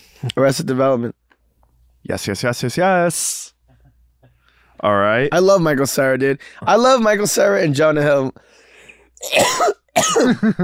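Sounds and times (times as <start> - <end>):
speech: 0.2 - 1.2, 2.0 - 3.6, 4.8 - 8.6, 9.2 - 10.6
person coughing with harsh rasping coughs: 9.2 - 10.6.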